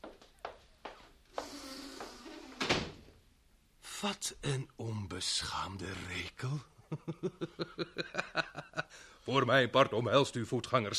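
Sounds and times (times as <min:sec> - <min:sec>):
door creaking and scraping shut with a firm thud: 0:02.2 - 0:03.1
speech: 0:04.0 - 0:10.9
laughter: 0:06.9 - 0:08.9.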